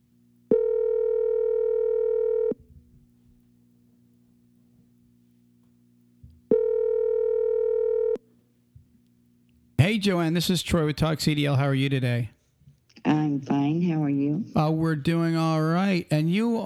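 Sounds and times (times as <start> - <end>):
faint low hum: 0.0 - 16.6
telephone line tone beeps while a call is placed: 0.5 - 2.6, 6.5 - 8.2
speech: 10.0 - 12.4, 14.7 - 16.6.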